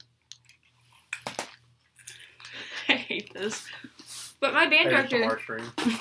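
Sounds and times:
gum chewing: 0.0s - 2.6s
speech: 3.1s - 6.0s.

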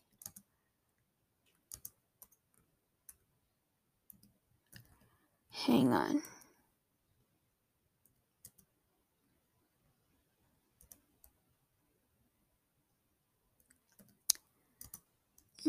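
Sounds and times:
keyboard typing: 0.0s - 0.5s, 1.4s - 3.3s, 4.0s - 5.1s, 8.0s - 8.8s, 10.8s - 11.4s, 13.6s - 15.5s
speech: 5.6s - 6.3s.

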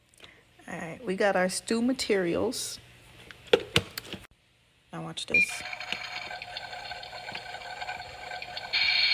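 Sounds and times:
speech: 0.7s - 2.8s, 5.2s - 5.8s
water pouring into a toy crock pot: 5.6s - 9.1s.

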